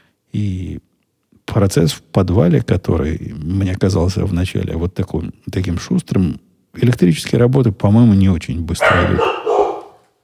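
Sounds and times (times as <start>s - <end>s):
speech: 1.6s - 9.4s
visiting guest dog barking: 8.8s - 10.1s.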